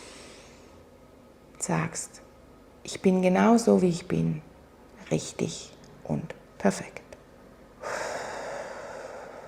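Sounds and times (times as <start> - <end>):
speech: 1.6 - 2.2, 2.8 - 4.5, 5.1 - 7.0
deep breath in during a guided breathing exercise: 7.8 - 9.4.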